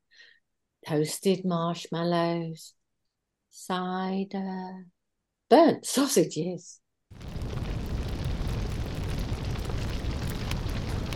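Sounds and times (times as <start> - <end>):
speech: 0.8 - 2.8, 3.6 - 7.4
fireworks exploding in a dense barrage: 7.2 - 11.1.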